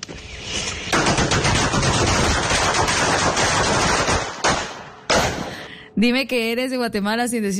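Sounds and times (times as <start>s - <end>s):
long string of firecrackers popping: 0.0s - 5.7s
speech: 6.0s - 7.5s.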